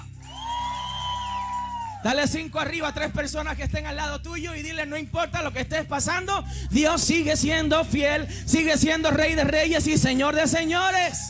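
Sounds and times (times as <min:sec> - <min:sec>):
crowd of people cheering loudly: 0:00.1 - 0:02.4, 0:10.2 - 0:11.2
person whooping in a high rising note: 0:00.2 - 0:02.1
speech: 0:02.0 - 0:11.2.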